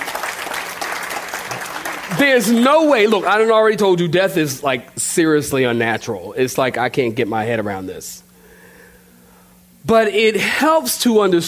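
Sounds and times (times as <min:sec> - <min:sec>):
crowd applauding: 0:00.0 - 0:03.4
speech: 0:02.1 - 0:08.2, 0:09.8 - 0:11.4.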